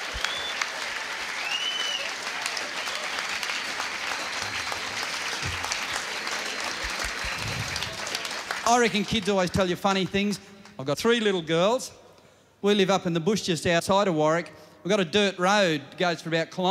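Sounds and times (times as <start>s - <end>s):
audience whistles: 0.0s - 2.2s, 2.8s - 4.7s, 7.2s - 7.8s
audience applauding: 0.0s - 10.1s
speech: 8.7s - 12.0s, 12.6s - 16.7s.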